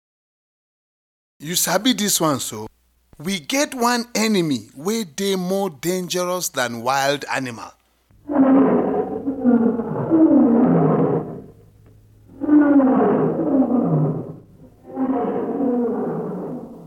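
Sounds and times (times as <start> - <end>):
speech: 1.4 - 7.8
lion roaring: 8.1 - 16.8.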